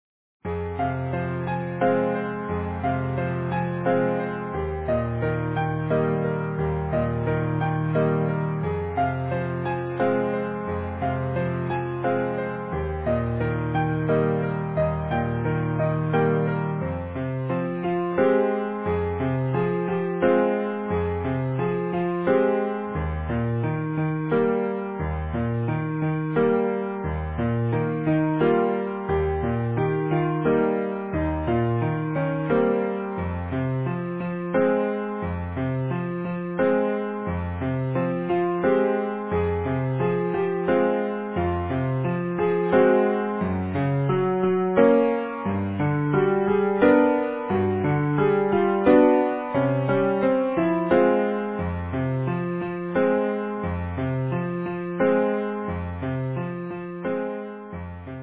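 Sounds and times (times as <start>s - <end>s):
easy piano: 0.4s - 58.2s.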